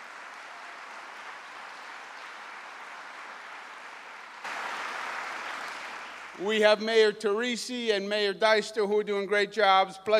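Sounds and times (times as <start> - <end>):
crowd applause in Buffalo: 0.0 - 6.8
speech: 6.4 - 10.1.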